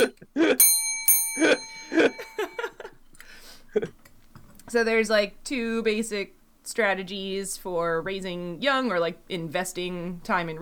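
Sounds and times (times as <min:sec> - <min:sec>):
small bell ringing: 0:00.6 - 0:02.9
speech: 0:04.7 - 0:10.6.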